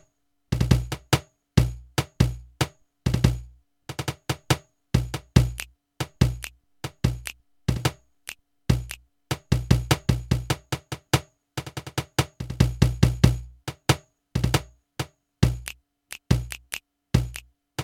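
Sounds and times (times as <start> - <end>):
Millenium NonaPad cajon kit: 0.5 - 8.0, 8.7 - 11.1, 11.6 - 13.6, 15.5 - 17.8.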